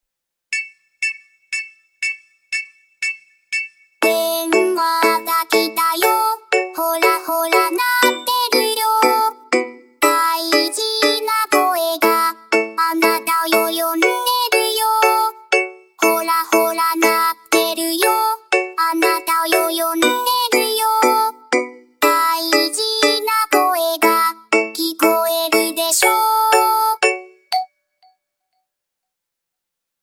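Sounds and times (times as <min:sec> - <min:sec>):
cute phone call ringtone: 0:00.6 - 0:28.2.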